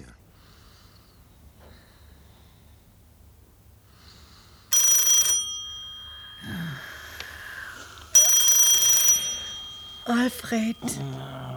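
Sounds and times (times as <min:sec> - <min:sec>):
faint movement: 0:00.1 - 0:11.5
telephone ringing with electronic trilling bursts: 0:00.3 - 0:11.5
speech: 0:10.3 - 0:11.5.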